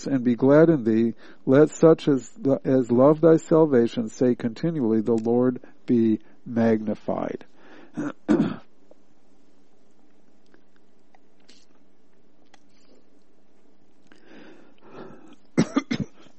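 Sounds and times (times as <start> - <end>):
speech: 0.0 - 8.7
person clearing throat: 8.0 - 8.7, 15.1 - 16.3
person coughing with something caught in the throat: 8.0 - 8.7, 15.0 - 16.3.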